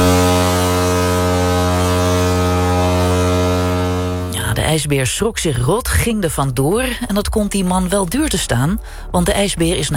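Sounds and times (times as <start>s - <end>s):
ship's foghorn blast: 0.0s - 4.7s
speech: 4.8s - 9.9s.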